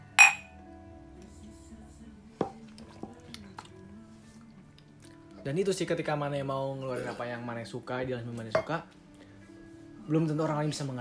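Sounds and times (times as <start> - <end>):
glasses clinking in a toast: 0.0 - 0.5
speech: 5.4 - 9.0, 10.1 - 11.0.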